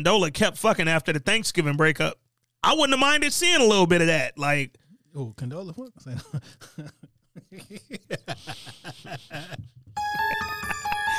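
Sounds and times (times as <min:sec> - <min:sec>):
speech: 0:00.0 - 0:10.5
laughter and chuckling: 0:06.0 - 0:11.1
loud bright electronic phone ringtone: 0:10.0 - 0:11.1.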